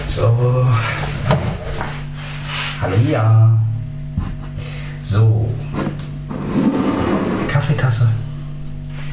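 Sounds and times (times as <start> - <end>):
speech: 0.1 - 2.0, 2.8 - 3.7, 5.1 - 5.9, 7.6 - 8.2
chair creaking and squeaking as someone sits down at a work table: 0.7 - 4.5, 5.7 - 7.7.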